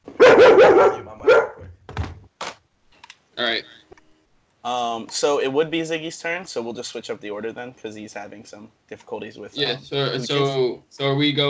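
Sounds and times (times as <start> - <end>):
dog barking in high yappy barks: 0.2 - 1.6
speech: 4.6 - 11.4.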